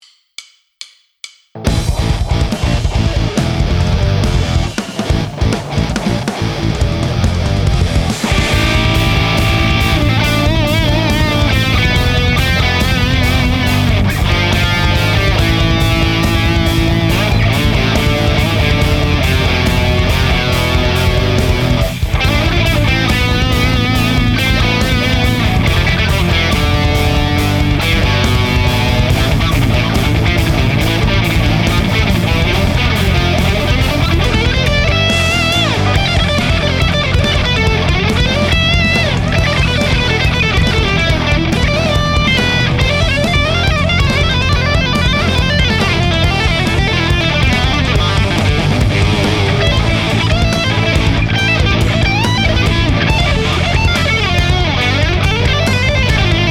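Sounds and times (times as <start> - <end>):
metal guitar solo: 1.6 - 56.4.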